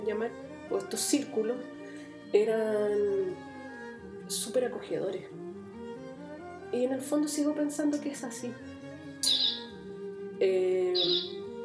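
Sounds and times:
speech: 0.1s - 3.5s, 4.3s - 5.4s, 6.7s - 9.5s, 10.4s - 11.4s
cuckoo clock sounding with bird-like calls: 9.2s - 9.8s, 11.0s - 11.4s.

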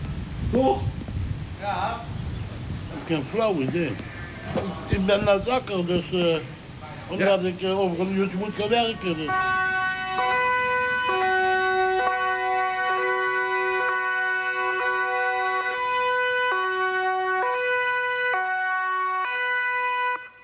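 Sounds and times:
speech: 0.5s - 1.0s, 1.6s - 2.2s, 2.9s - 9.7s
two-tone police siren sounding as a wake-up alarm: 8.6s - 20.4s.

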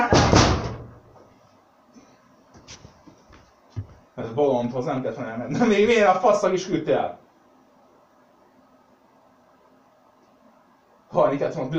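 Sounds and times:
door slamming shut: 0.0s - 1.1s
speech: 4.2s - 7.2s, 11.2s - 11.7s.

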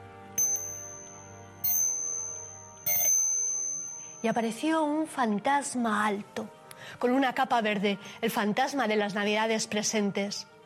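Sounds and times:
faint steady tonal background: 0.0s - 6.7s
clock striking: 0.4s - 4.1s
speech: 4.2s - 10.5s.

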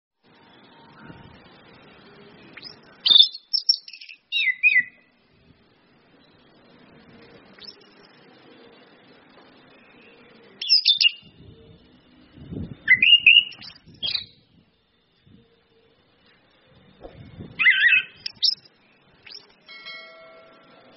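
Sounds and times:
orange-headed thrush ngeplong-style song: 2.5s - 5.1s, 12.9s - 14.5s, 17.6s - 19.6s.

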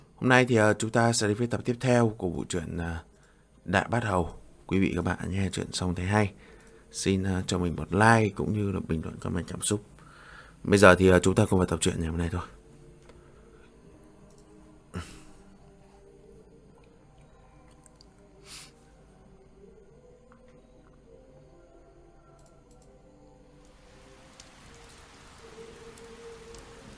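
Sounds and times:
speech: 0.2s - 3.1s, 3.7s - 9.9s, 10.6s - 12.6s
heavy rain pouring onto old broken roof tiles: 23.7s - 26.9s.

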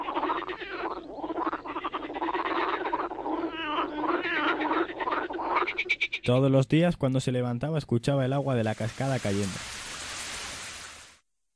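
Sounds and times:
frogs croaking in a pond: 0.0s - 6.5s
speech: 6.3s - 9.7s.

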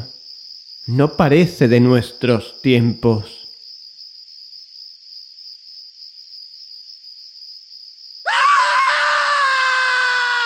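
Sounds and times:
speech: 0.9s - 3.4s
bloodcurdling scream at night near an old house: 8.2s - 10.4s.

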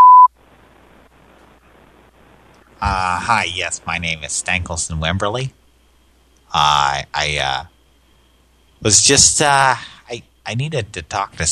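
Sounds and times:
voicemail beep on a phone line: 0.0s - 0.3s
faint quiet phone line hiss: 0.3s - 11.5s
speech: 2.8s - 5.6s, 6.5s - 7.7s, 8.8s - 11.5s.

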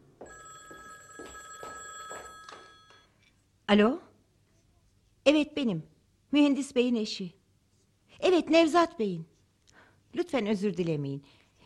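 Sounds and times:
telephone bell ringing: 0.2s - 3.2s
speech: 3.7s - 4.0s, 5.3s - 7.4s, 8.2s - 9.3s, 10.1s - 11.4s.

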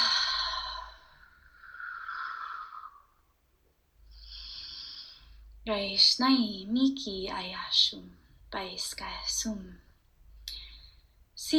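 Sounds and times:
person taking big breaths: 0.0s - 3.2s, 4.1s - 5.5s
speech: 5.7s - 9.8s, 11.4s - 11.5s.

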